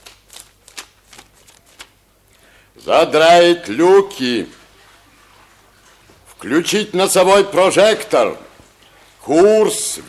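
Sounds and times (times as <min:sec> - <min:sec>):
pages of a novel being turned: 0:00.0 - 0:02.0
speech: 0:02.8 - 0:04.6, 0:06.4 - 0:08.5, 0:09.3 - 0:10.0.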